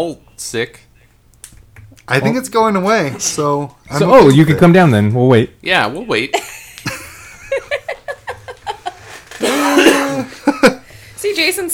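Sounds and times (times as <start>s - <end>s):
speech: 0.0s - 0.9s, 2.1s - 6.6s, 11.2s - 11.7s
laughter: 6.4s - 10.9s
person coughing: 9.4s - 10.6s.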